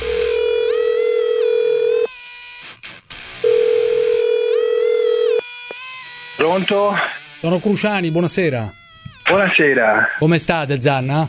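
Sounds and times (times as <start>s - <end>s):
telephone dial tone while a number is dialled: 0.0s - 2.1s, 3.5s - 5.4s
speech: 6.5s - 11.2s.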